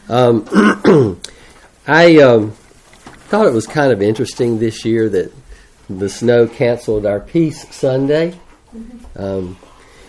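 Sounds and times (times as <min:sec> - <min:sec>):
speech: 0:00.1 - 0:02.6, 0:03.3 - 0:09.7
person clearing throat: 0:00.4 - 0:01.2.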